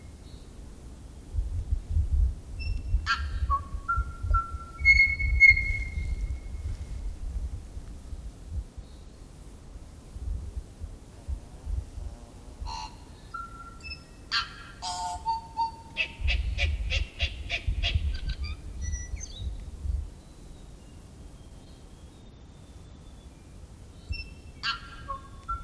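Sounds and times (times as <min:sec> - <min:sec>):
steady low rumble: 0:00.6 - 0:13.2, 0:15.9 - 0:20.2
tui song with whistles, clicks and harsh notes: 0:02.6 - 0:06.4, 0:13.4 - 0:14.1, 0:18.4 - 0:19.6, 0:24.0 - 0:25.6.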